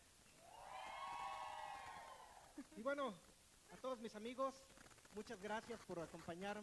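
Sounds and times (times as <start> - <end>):
live studio audience shouting and cheering backstage at a music show: 0.4 - 2.6
speech: 2.6 - 6.6.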